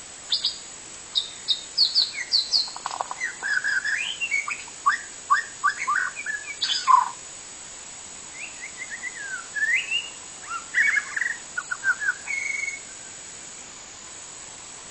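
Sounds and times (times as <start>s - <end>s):
wild white-rumped shama singing in forest: 0.3s - 0.6s, 1.2s - 7.2s, 8.3s - 13.0s.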